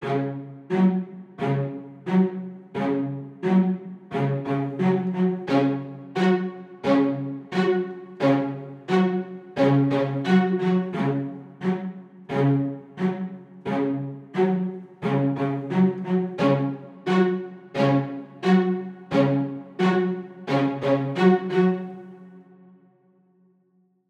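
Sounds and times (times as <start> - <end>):
classical strings playing: 0.0 - 22.1.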